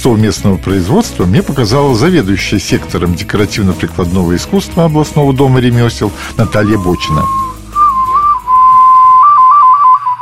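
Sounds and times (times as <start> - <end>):
speech: 0.0 - 7.4
ceramic clay toy whistle from Russia's Pskov region being blown: 6.4 - 10.1.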